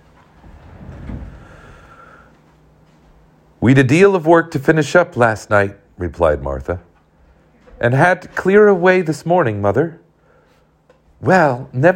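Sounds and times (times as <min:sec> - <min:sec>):
chair dragged across a wooden floor to a children's table: 0:00.4 - 0:01.7
speech: 0:03.6 - 0:06.9, 0:07.8 - 0:10.0, 0:11.2 - 0:11.9.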